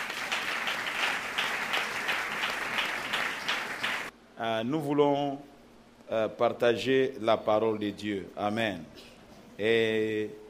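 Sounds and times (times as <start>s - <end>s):
church congregation clapping: 0.0s - 4.1s
speech: 4.4s - 5.5s, 6.1s - 10.4s.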